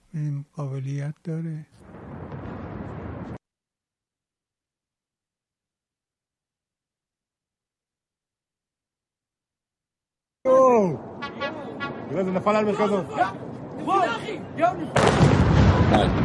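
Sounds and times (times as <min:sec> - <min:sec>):
speech: 0:00.2 - 0:01.9, 0:12.4 - 0:16.2
loud hissing roar of a missile launch: 0:15.0 - 0:16.2.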